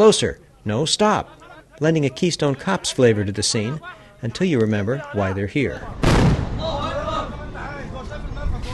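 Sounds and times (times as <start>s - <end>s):
speech: 0.0s - 6.8s
heavy deep explosions booming: 6.0s - 7.0s.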